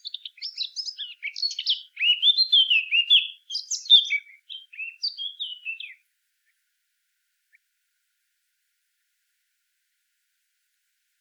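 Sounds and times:
Eurasian blackcap song: 0.0 - 6.0.

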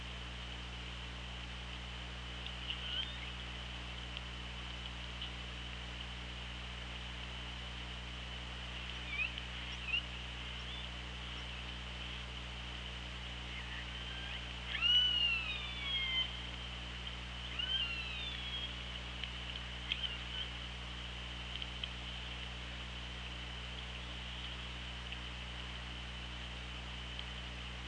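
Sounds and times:
low hum: 0.0 - 27.8
orca calls recorded underwater by hydrophone: 13.4 - 16.4.

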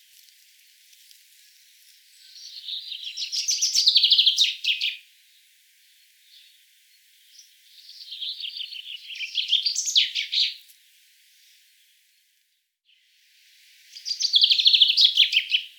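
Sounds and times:
Common chaffinch Fringilla coelebs song: 2.0 - 5.1, 6.2 - 10.7, 13.8 - 15.7.

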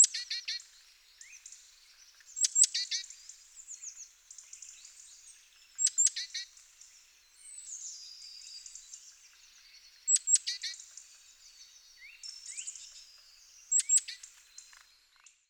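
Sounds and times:
great tit Parus major giving sharp high ticks and chatter: 0.0 - 7.1, 8.6 - 15.4.

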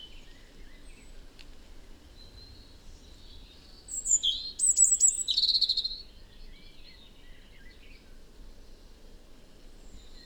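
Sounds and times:
European robin singing: 3.9 - 6.0.

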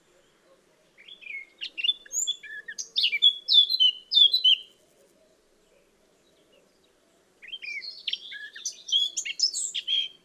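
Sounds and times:
Eurasian blackcap Sylvia atricapilla singing: 1.0 - 4.8, 7.4 - 10.2.

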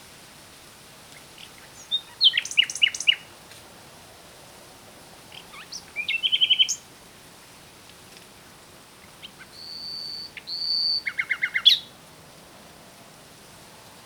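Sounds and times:
common nightingale Luscinia megarhynchos singing: 1.4 - 3.3, 5.3 - 6.9, 9.0 - 11.9.

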